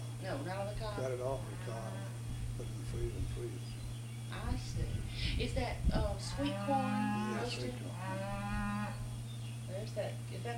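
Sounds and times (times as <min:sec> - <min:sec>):
quieter farmyard noise: 0:00.0 - 0:05.1, 0:06.0 - 0:10.5
steady hum: 0:00.0 - 0:10.5
speech: 0:00.2 - 0:09.0, 0:09.7 - 0:10.5
cow mooing, calling for her calf: 0:00.9 - 0:02.2, 0:06.2 - 0:09.1.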